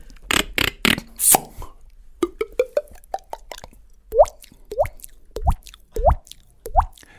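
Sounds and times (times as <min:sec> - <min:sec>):
voice imitating water drops with the mouth: 0:02.2 - 0:07.1.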